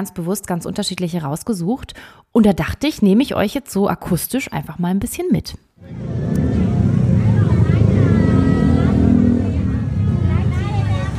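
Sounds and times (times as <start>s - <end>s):
speech: 0.0s - 6.2s
crowd chatter at a night market street in Bangkok's Chinatown: 5.8s - 11.1s
rumble of passing engines and traffic: 5.8s - 11.1s.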